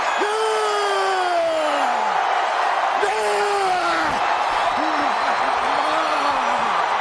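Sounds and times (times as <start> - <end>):
man screaming: 0.1 - 2.3, 2.9 - 6.9.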